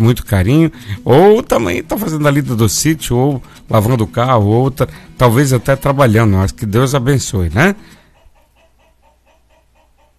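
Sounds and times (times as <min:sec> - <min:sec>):
speech: 0:00.0 - 0:08.0
rooster calling with short clucking notes: 0:08.0 - 0:10.1.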